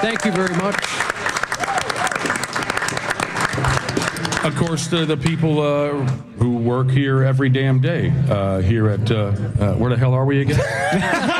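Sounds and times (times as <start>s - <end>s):
faint voices and cheers: 0.0s - 0.8s, 1.4s - 3.0s
speech: 0.0s - 1.4s, 4.4s - 11.3s
crowd applauding: 0.0s - 5.2s
laughter: 10.5s - 11.3s.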